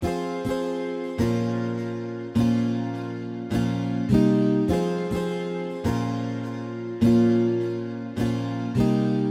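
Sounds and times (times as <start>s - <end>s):
guitar loops in F minor: 0.0s - 9.3s.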